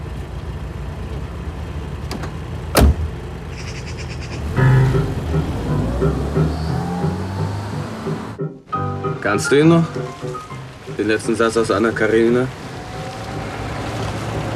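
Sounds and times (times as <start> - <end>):
car engine idling: 0.0 - 14.5
car passenger door latch click: 2.1 - 3.1
speech: 6.0 - 6.7, 9.2 - 10.3, 11.0 - 12.6.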